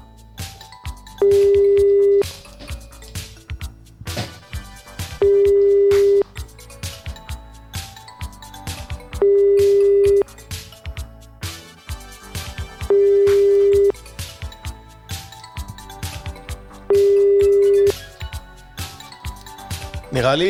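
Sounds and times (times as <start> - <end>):
ringback tone of an unanswered telephone call: 1.1 - 2.4, 5.0 - 6.3, 9.1 - 10.2, 12.8 - 14.0, 16.8 - 18.0
people talking: 20.1 - 20.4.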